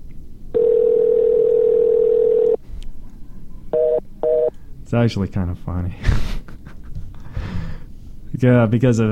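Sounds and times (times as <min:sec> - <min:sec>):
telephone tone after call fails to connect: 0:00.5 - 0:02.6, 0:03.8 - 0:04.5
speech: 0:04.9 - 0:06.4, 0:08.4 - 0:09.1.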